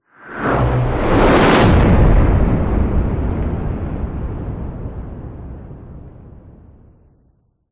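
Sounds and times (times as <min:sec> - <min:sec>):
massive heavy fast cinematic whoosh: 0:00.2 - 0:03.5.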